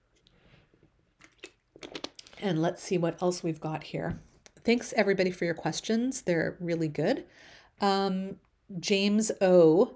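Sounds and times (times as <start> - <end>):
person sipping water: 0.2 - 2.4
gulping clicks: 1.2 - 2.5
speech: 2.4 - 9.9.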